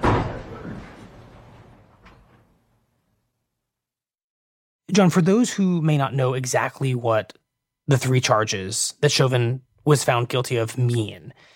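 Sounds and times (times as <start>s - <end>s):
door swinging shut with heavy thud in a large room: 0.0s - 2.9s
speech: 4.9s - 11.5s.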